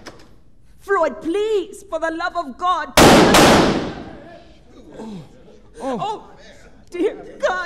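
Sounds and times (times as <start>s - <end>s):
speech: 0.9s - 3.9s, 5.0s - 7.6s
gunshot in a radio drama: 3.0s - 4.3s.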